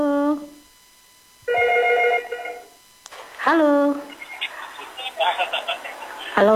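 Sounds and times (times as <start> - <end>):
telephone ringing with bright electronic tones: 1.5 - 2.8
speech: 3.5 - 4.0, 6.4 - 6.5
laughter: 4.2 - 6.5.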